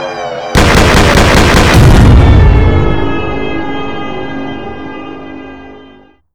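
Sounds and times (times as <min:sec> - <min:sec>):
exothermic bomb explosion: 0:00.5 - 0:05.2.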